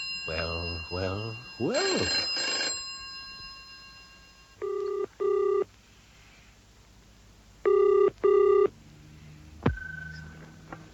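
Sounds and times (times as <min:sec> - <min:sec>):
telephone ringing in double bursts: 0:00.0 - 0:05.7, 0:07.7 - 0:08.7
speech: 0:00.3 - 0:02.5.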